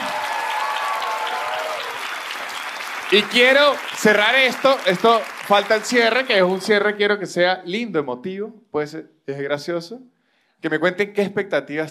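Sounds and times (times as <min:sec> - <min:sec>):
faint whistles and cheers: 0:00.0 - 0:04.0, 0:05.9 - 0:06.9
crowd applause: 0:00.0 - 0:06.8
speech: 0:03.1 - 0:11.8.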